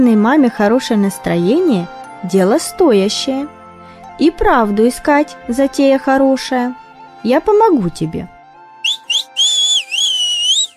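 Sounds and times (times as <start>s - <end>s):
speech: 0.0s - 3.6s, 4.2s - 8.3s
loud shrill whistle: 8.8s - 10.7s.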